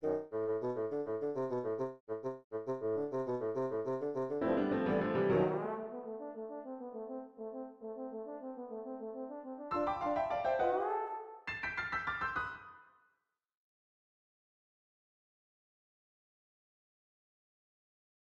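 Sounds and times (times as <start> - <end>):
bassoon: 0.0 - 11.4
horn: 0.0 - 11.4.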